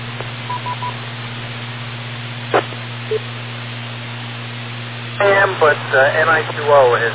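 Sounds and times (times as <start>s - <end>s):
steady low electrical hum: 0.0s - 7.1s
call-waiting telephone beeps from an incoming phone call: 0.5s - 1.0s
speech: 3.1s - 3.4s, 5.2s - 7.1s.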